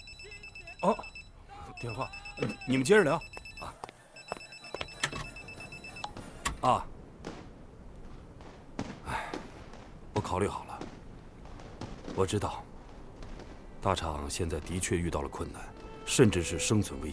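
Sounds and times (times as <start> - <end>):
telephone ringing in electronic bursts: 0.0 - 6.2
people talking: 0.0 - 6.9, 10.2 - 10.8, 13.8 - 17.1.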